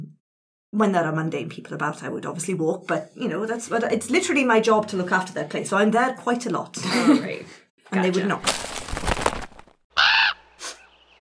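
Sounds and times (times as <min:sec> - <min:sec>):
speech: 0:00.7 - 0:08.6
rustling burst of a raven and a crow landing: 0:08.4 - 0:09.7
raven and crow harsh cawing: 0:10.0 - 0:10.5.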